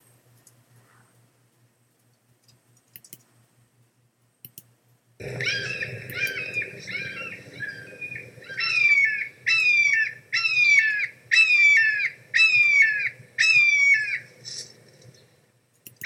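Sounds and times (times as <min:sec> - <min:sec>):
red-shouldered hawk calling: 0:05.2 - 0:14.7.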